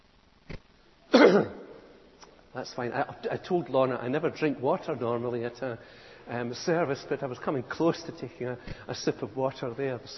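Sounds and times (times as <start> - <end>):
man coughing to clear his throat during a church sermon: 1.1 - 1.7
speech: 1.3 - 1.6, 2.5 - 10.1.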